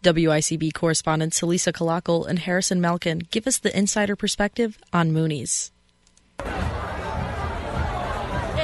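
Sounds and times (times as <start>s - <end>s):
speech: 0.0s - 5.8s
crowd chatter in a packed college bar: 6.4s - 8.6s.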